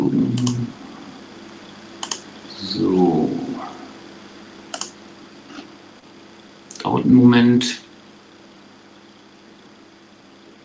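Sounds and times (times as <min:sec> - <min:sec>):
faint room hum: 0:00.0 - 0:10.6
computer mouse double click: 0:00.4 - 0:00.6, 0:02.0 - 0:02.3, 0:04.7 - 0:05.6
speech: 0:06.9 - 0:07.8.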